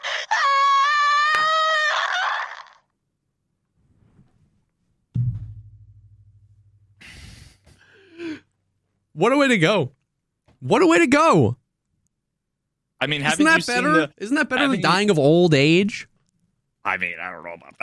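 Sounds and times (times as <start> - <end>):
voice imitating a muffled strained scream: 0.0 - 2.8
speech: 9.2 - 10.0, 10.6 - 11.6, 13.0 - 16.1, 16.8 - 17.8.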